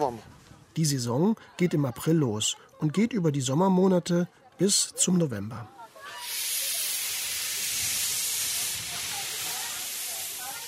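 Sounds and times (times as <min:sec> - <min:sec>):
speech: 0:00.1 - 0:05.8
historic steam train hissing on the Channel coast: 0:05.9 - 0:10.6.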